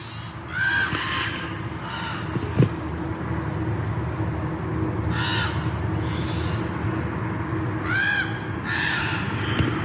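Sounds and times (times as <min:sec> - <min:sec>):
crows cawing on a freezing morning at the base of Mount St. Helens: 0:00.0 - 0:02.4, 0:05.1 - 0:06.6, 0:07.8 - 0:09.6
steady outdoor hum: 0:00.0 - 0:09.8.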